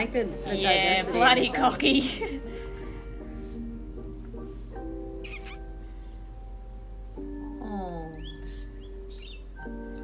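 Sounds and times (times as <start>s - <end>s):
speech: 0.0s - 2.7s
laughter: 1.2s - 2.8s
several birds chirping and tweeting: 5.2s - 6.8s, 7.8s - 10.0s.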